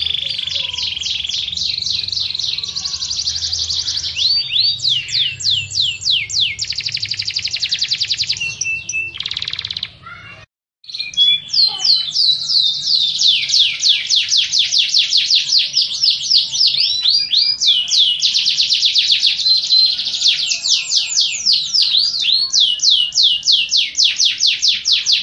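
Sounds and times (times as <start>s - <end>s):
canary song: 0.0s - 25.2s.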